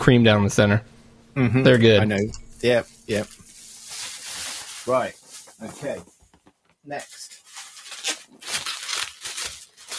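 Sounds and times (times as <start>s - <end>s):
speech: 0.0s - 3.4s, 4.8s - 6.1s, 6.8s - 7.3s
bubble wrap being handled: 2.6s - 9.9s.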